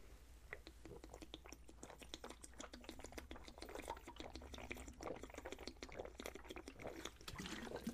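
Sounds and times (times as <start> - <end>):
person drinking water with wet clicks and gulping: 0.0 - 7.9.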